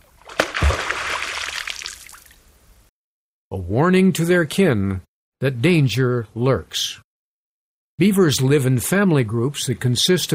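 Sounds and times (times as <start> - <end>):
beaver tail slapping water surface: 0.0 - 2.4
speech: 3.6 - 7.0, 8.0 - 10.3.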